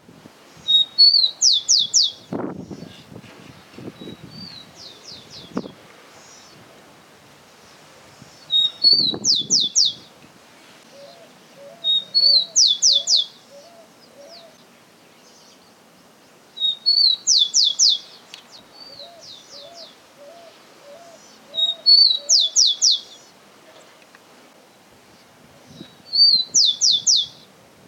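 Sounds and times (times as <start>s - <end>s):
rufous-collared sparrow calling: 0.6s - 3.1s, 8.4s - 10.1s, 10.9s - 15.6s, 16.6s - 24.1s, 25.7s - 27.5s.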